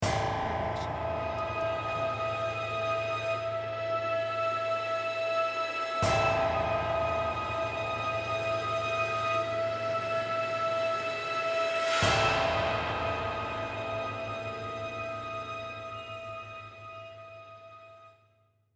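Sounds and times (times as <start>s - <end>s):
strings: 0.0s - 18.1s
piano: 0.0s - 18.2s.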